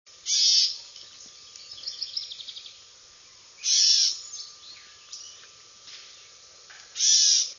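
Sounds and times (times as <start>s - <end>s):
catbird singing: 0.2s - 5.5s, 7.0s - 7.5s.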